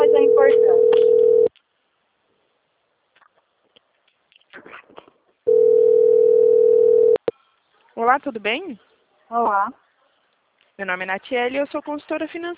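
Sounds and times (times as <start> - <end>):
telephone dialing tone: 0.0 - 1.5, 5.5 - 7.2
speech: 8.1 - 9.8, 10.8 - 12.5.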